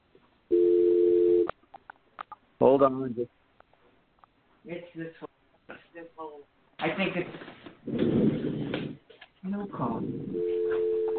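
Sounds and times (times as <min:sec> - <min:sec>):
telephone dial tone while dialing back in to a call: 0:00.5 - 0:01.5, 0:10.4 - 0:11.1
speech: 0:02.6 - 0:03.4, 0:04.7 - 0:05.3, 0:06.0 - 0:08.3.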